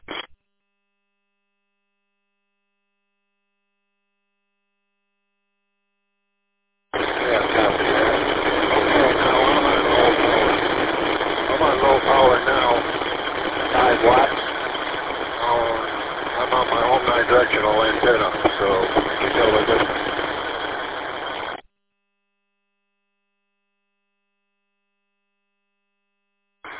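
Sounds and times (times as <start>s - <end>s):
engine drone over band-limited radio transmission through a repeater: 7.0s - 21.6s.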